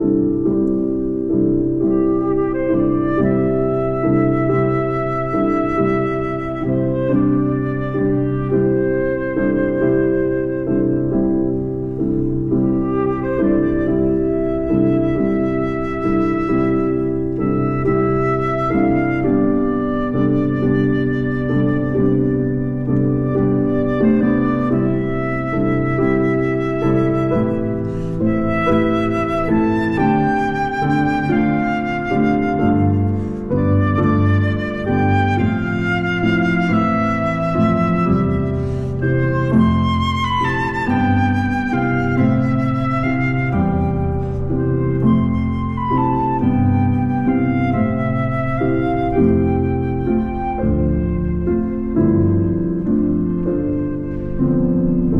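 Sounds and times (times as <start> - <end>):
piano part of a pastorale for flute and piano: 0.0 - 55.1.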